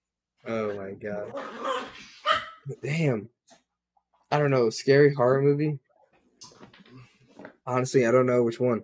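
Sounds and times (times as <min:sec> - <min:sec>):
speech: 0:00.4 - 0:03.6, 0:04.3 - 0:05.8, 0:07.7 - 0:08.8
dog barking: 0:01.4 - 0:02.7.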